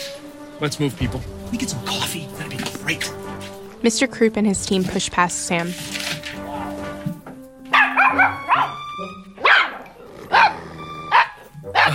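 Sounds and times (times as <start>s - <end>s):
steady tonal musical backing: 0.0s - 11.9s
speech: 0.6s - 6.2s
dogs barking: 7.7s - 11.9s.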